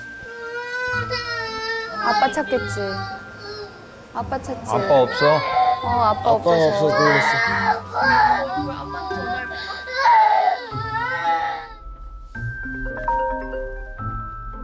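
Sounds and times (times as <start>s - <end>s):
baby crying after waking up: 0.3s - 3.9s, 4.6s - 11.8s
speech: 1.0s - 1.4s, 2.0s - 3.2s, 4.2s - 9.3s.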